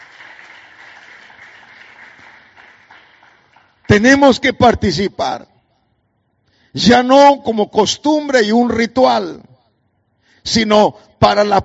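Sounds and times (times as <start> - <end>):
audience clapping hands in dense applause: 0.0 - 3.8
speech: 3.9 - 5.5, 6.8 - 9.5, 10.4 - 11.6.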